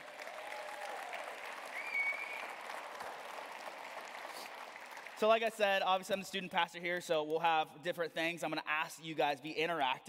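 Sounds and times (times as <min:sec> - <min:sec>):
church crowd clapping: 0:00.0 - 0:06.2
whistle or cheer from church crowd: 0:00.4 - 0:02.7
speech: 0:05.2 - 0:10.0.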